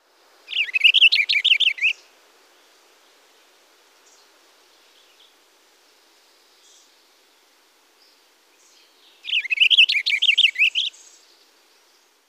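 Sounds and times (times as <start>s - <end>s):
purple finch: 0.5s - 1.9s, 9.2s - 11.1s.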